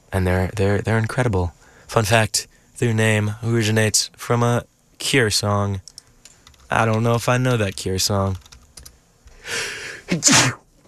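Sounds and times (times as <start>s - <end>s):
speech: 0.2s - 5.9s, 6.7s - 8.5s, 9.5s - 10.6s
person sneezing: 9.4s - 10.6s.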